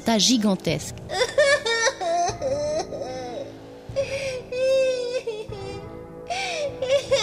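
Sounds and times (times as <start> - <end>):
speech: 0.1 - 1.3
woman crying and sobbing with wailing moans: 1.1 - 7.2.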